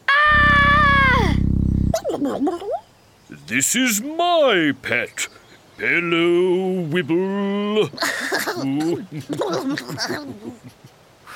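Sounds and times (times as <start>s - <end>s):
short warbling vocal noises: 0.3s - 2.2s
voice imitating a dinosaur roar: 0.3s - 2.2s
speech: 2.2s - 2.8s, 3.5s - 11.0s.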